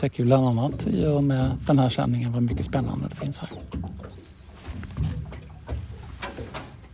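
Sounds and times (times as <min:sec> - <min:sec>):
speech: 0:00.0 - 0:04.3
water lapping and clucking against a boat hull at Nyckelgrundet: 0:00.0 - 0:06.9
faint tern calls: 0:03.2 - 0:06.5.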